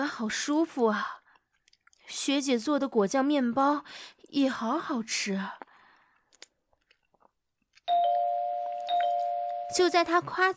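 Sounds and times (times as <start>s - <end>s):
speech: 0.0s - 1.2s, 2.1s - 5.7s, 9.7s - 10.5s
faint scattered chewing-like clicks: 1.2s - 2.1s, 5.6s - 7.8s
loud electronic doorbell with two bright chimes: 7.9s - 10.0s.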